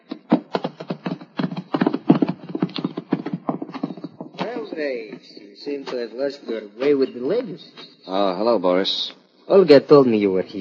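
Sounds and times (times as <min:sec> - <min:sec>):
horse hooves clip-clopping: 0:00.0 - 0:08.0
speech: 0:04.8 - 0:10.5.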